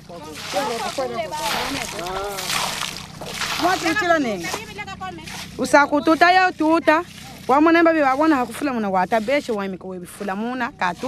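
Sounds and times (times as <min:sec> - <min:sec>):
water poured into a basin to wash sand from ore: 0:00.0 - 0:11.0
speech: 0:00.1 - 0:02.7, 0:03.6 - 0:11.0.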